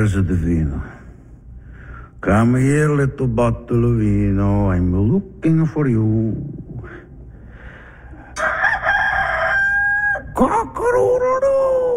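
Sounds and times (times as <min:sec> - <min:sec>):
speech: 0:00.0 - 0:01.0, 0:02.2 - 0:07.0, 0:10.4 - 0:11.9
person imitating a rooster crow: 0:08.4 - 0:11.9.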